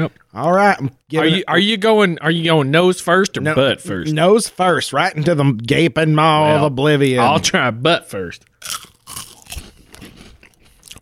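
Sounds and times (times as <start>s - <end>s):
speech: 0.0s - 8.9s
person chewing: 8.4s - 11.0s
crunchy chocolate treat filled with runny fudge crunching: 8.6s - 11.0s.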